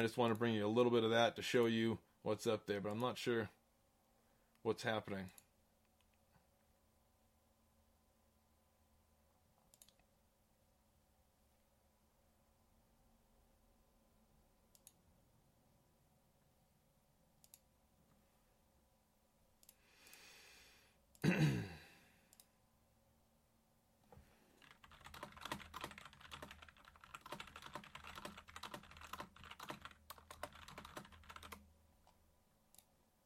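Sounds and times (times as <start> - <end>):
speech: 0.0 - 3.6, 4.6 - 5.4
breathy sigh: 19.8 - 22.3
typing on a computer keyboard: 24.6 - 31.7.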